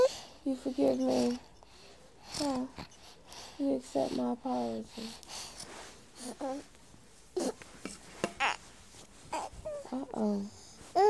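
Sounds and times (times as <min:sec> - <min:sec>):
baby fussing and babbling: 0:00.0 - 0:01.5, 0:02.2 - 0:03.0, 0:06.2 - 0:06.7, 0:07.3 - 0:07.6, 0:08.2 - 0:08.7, 0:09.3 - 0:11.0
soft adult talk: 0:00.0 - 0:05.3, 0:09.7 - 0:10.7
speech: 0:00.5 - 0:01.5, 0:02.3 - 0:03.0, 0:03.6 - 0:05.3, 0:06.2 - 0:06.8, 0:09.9 - 0:11.0.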